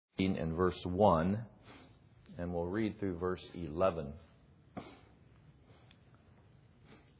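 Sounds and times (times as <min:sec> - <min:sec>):
speech: 0:00.2 - 0:01.8, 0:02.4 - 0:04.9
nasal sniffing: 0:01.6 - 0:02.1, 0:04.7 - 0:06.0, 0:06.7 - 0:07.1.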